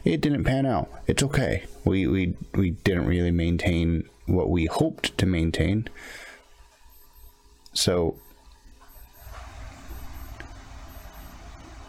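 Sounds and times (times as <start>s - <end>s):
speech: 0.1s - 6.2s, 7.8s - 8.2s
faint electronic beeping from a wristwatch left outside a bunker: 6.6s - 11.8s.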